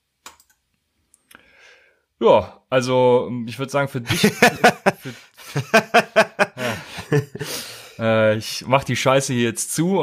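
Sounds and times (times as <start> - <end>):
sharp computer mouse clicks on a Randomize button: 0.2 - 1.4
speech: 2.2 - 6.4, 7.1 - 10.0
laughter: 4.0 - 7.7.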